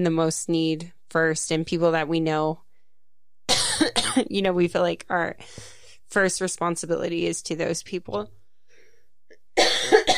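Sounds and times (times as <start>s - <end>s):
speech: 0.0s - 2.6s, 3.8s - 8.4s
single loud rough cough: 3.5s - 4.3s, 9.6s - 10.1s.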